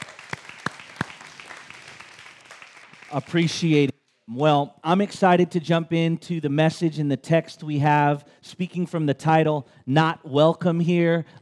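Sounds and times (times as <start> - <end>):
congregation applauding: 0.0 - 3.9
speech: 3.1 - 11.4.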